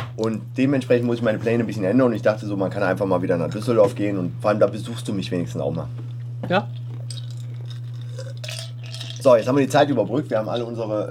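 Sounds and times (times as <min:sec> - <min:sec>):
speech: 0:00.2 - 0:06.8, 0:09.2 - 0:11.0
ice cubes clinking against a glass: 0:07.1 - 0:09.3.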